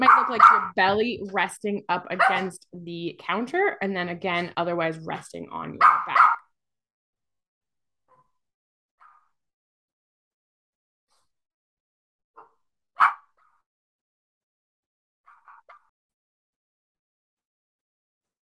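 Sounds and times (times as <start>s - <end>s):
puppy barking: 0.0s - 0.7s, 2.2s - 2.4s, 5.8s - 6.4s, 13.0s - 13.3s
speech: 0.3s - 6.3s.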